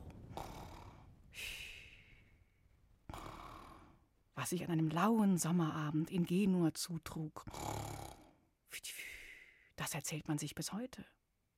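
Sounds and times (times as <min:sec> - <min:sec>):
voice imitating a snoring flea: 0:03.1 - 0:03.9, 0:07.4 - 0:08.4
speech: 0:04.4 - 0:07.7, 0:09.9 - 0:11.2.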